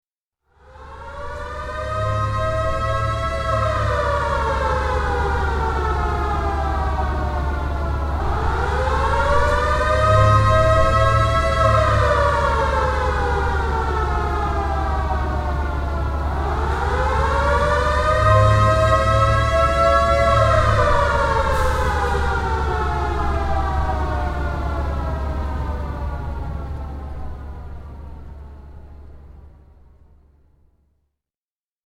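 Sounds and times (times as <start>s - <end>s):
short World War II siren blasts: 0.5s - 29.8s.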